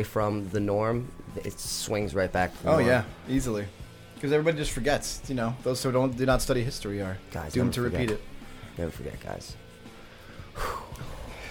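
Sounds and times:
speech: 0.0s - 9.6s, 10.6s - 10.8s
heavy breathing: 8.4s - 8.8s, 9.8s - 11.5s.

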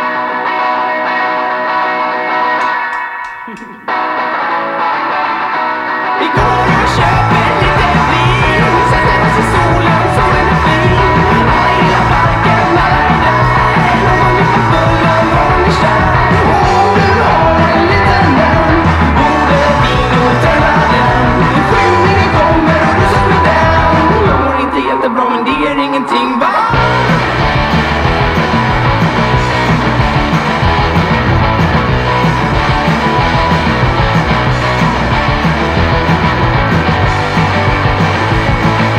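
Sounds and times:
distorted guitars in garage punk rock: 0.0s - 38.9s
shouted vocals in garage punk rock: 6.2s - 27.7s
pounding drums in garage punk rock: 6.4s - 25.0s, 25.6s - 38.9s.

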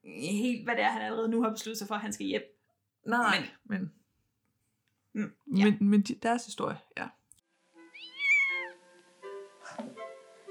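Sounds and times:
speech: 0.2s - 4.0s, 5.2s - 7.2s
cat meowing: 7.9s - 8.8s.

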